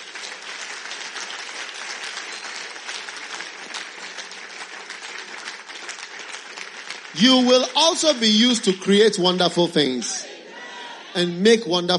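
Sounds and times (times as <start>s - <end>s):
audience applause at a worship gathering: 0.0s - 9.0s
speech: 7.2s - 10.3s, 11.2s - 11.9s.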